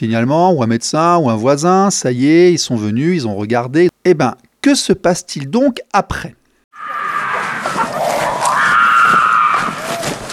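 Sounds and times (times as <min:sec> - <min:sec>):
speech: 0:00.0 - 0:06.4
child screaming in despair at night: 0:06.8 - 0:10.2.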